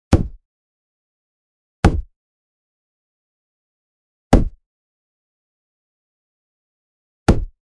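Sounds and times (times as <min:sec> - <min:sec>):
football hitting football: 0:00.1 - 0:00.4, 0:07.3 - 0:07.5.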